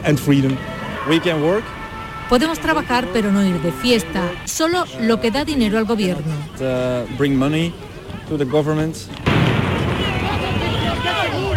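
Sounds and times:
crowd shouting at a violent street protest: 0.0s - 8.6s, 9.5s - 11.5s
speech: 0.0s - 9.3s
firecracker bang: 9.2s - 11.5s.

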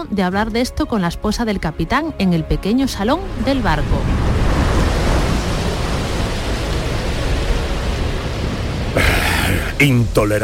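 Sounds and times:
speech: 0.0s - 4.3s, 9.8s - 10.4s
stormy sea roaring with rushing water: 2.8s - 10.4s
wind at sea: 2.9s - 10.4s.

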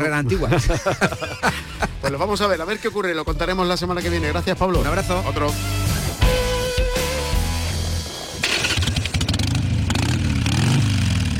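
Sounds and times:
speech: 0.0s - 6.4s
laughter: 0.3s - 2.4s
loud motorcycle engine starting up and revving: 6.1s - 11.3s.

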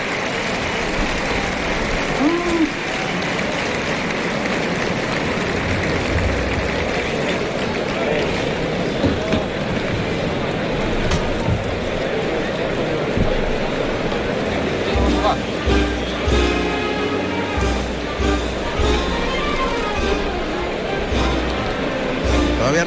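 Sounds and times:
big bullring crowd applauding and cheering for the matador: 0.0s - 22.8s
paso doble brass band music: 14.9s - 22.8s.

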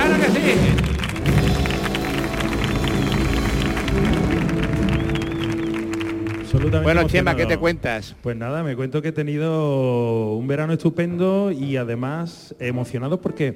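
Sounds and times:
audience applauding as a male guest is welcomed: 0.0s - 7.8s
speech: 6.6s - 13.5s.

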